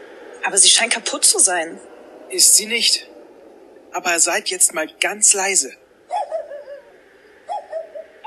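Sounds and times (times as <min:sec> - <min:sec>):
speech: 0:00.4 - 0:03.2, 0:03.9 - 0:05.8
dog whining: 0:06.1 - 0:08.2.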